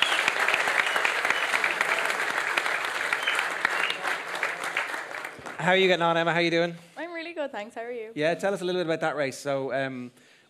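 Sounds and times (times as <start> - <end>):
cheering: 0.0 - 5.7
crowd applauding steadily: 0.0 - 6.4
speech: 5.6 - 10.3.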